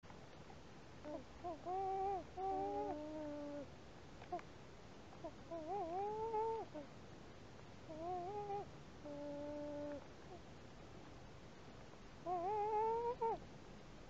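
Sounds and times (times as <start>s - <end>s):
loon cooing: 1.0s - 3.7s, 5.2s - 6.9s, 7.9s - 10.4s, 12.2s - 13.4s.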